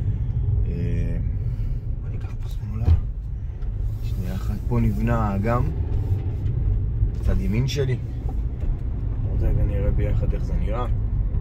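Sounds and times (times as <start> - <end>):
car traffic moving past by a lake and amusement park construction area: 0.0 - 11.3
speech: 4.7 - 5.8, 7.3 - 8.2, 10.0 - 11.0.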